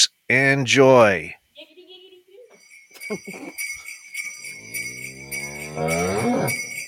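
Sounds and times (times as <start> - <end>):
speech: 0.3 - 1.4, 3.1 - 3.6, 5.8 - 6.6
faint steady ringing tone: 2.4 - 6.8
cow mooing: 4.4 - 6.8.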